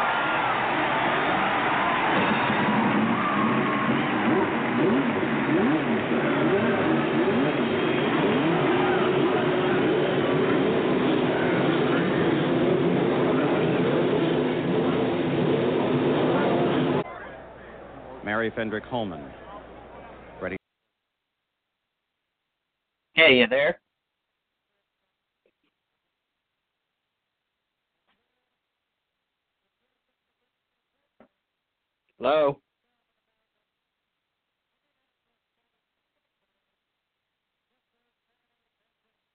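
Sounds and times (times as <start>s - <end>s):
field of race car engines roaring and revving: 0.2s - 17.0s
speech: 18.5s - 19.4s, 23.3s - 23.8s, 32.2s - 32.6s.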